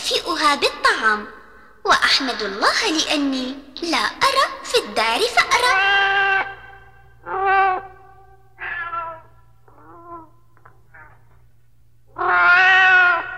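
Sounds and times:
low steady hum: 0.0 - 13.3
speech: 0.1 - 6.3
pet cat meowing for food: 7.2 - 8.0, 8.6 - 11.3, 12.1 - 13.3.

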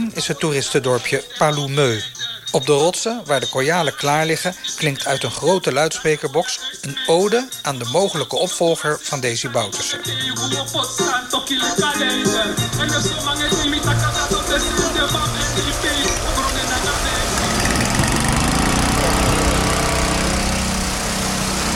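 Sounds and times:
speech: 0.2 - 16.2
engine-driven water pump pumping river water into a water tower: 12.7 - 21.7.

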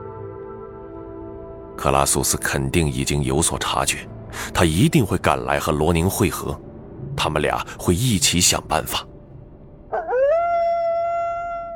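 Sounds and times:
speech: 1.8 - 9.1
giant eight-legged wolf-like creature howling: 9.9 - 11.7.

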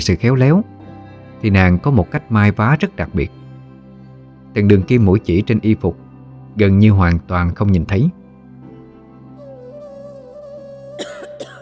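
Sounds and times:
speech: 0.0 - 0.7, 1.4 - 3.4, 4.5 - 6.0, 6.6 - 8.2
young woman coughing in a sudden coughing fit: 10.4 - 11.6.

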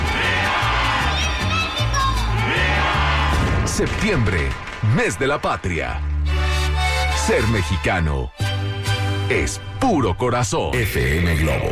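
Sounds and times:
crowd shouting a patriotic cry: 0.0 - 7.6
speech: 3.8 - 6.1, 7.2 - 8.4, 9.3 - 11.7.

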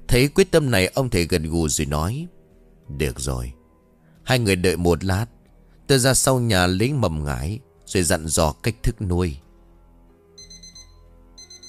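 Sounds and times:
speech: 0.1 - 3.6, 4.3 - 9.4
phone alarm beeping at midnight: 10.4 - 11.6.

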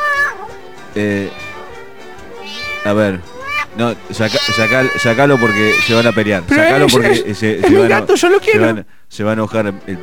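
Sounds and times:
cat meowing in a drawn-out tonal cry: 0.0 - 0.6, 1.2 - 7.0
speech: 1.0 - 1.4, 2.8 - 10.0.

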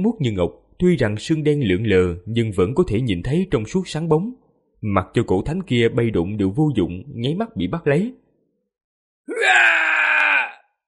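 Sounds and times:
speech: 0.0 - 8.2, 9.3 - 9.8
man screaming in agony: 9.3 - 10.7.

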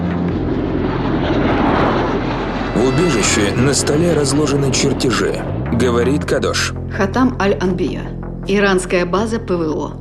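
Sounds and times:
fighter jets flying in formation: 0.0 - 6.9
speech: 3.0 - 9.9.

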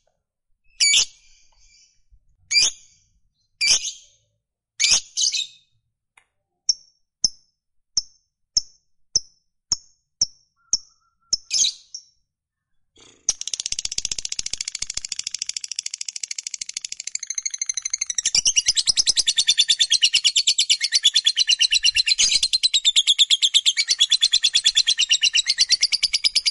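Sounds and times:
fighter-type lovebird chirping and chattering: 0.7 - 3.0, 3.6 - 4.1, 4.8 - 5.6, 10.2 - 12.2, 13.1 - 26.5.

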